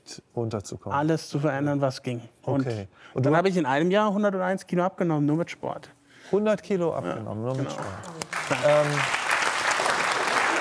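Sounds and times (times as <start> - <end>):
speech: 0.1 - 9.2
studio audience applause during a talk show: 7.8 - 10.6.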